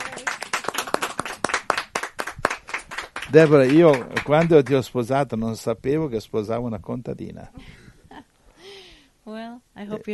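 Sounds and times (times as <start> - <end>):
small group clapping: 0.0 - 5.0
speech: 3.3 - 7.7, 9.9 - 10.1.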